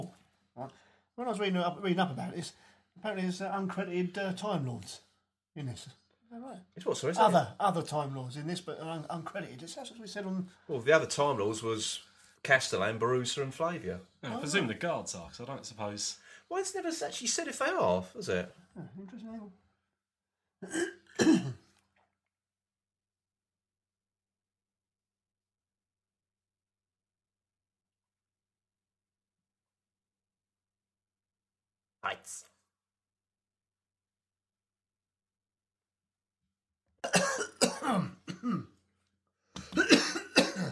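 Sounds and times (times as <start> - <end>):
speech: 0.6 - 19.6, 20.6 - 21.6, 32.1 - 32.5
coughing and throat clearing: 20.6 - 21.8, 37.0 - 38.8, 39.6 - 40.7.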